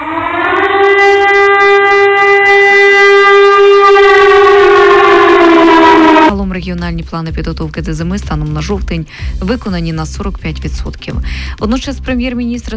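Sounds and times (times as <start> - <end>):
air raid warning siren wailing: 0.0 - 6.3
speech: 6.6 - 12.7.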